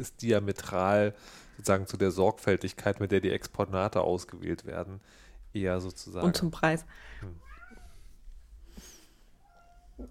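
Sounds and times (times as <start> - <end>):
speech: 0.0 - 7.5
unhappy cat meowing plaintively: 7.3 - 8.1, 9.4 - 10.0.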